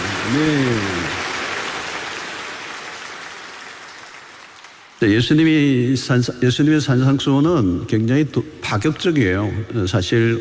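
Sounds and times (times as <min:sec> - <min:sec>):
large crowd clapping in applause giving glory to God: 0:00.0 - 0:05.1
speech: 0:00.3 - 0:01.2, 0:05.0 - 0:10.3.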